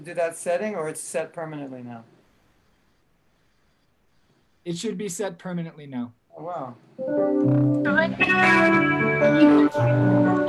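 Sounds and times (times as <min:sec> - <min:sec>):
speech: 0:00.0 - 0:02.2, 0:04.6 - 0:10.4
electronic keyboard playing sustained chorus-like chords: 0:07.0 - 0:10.4.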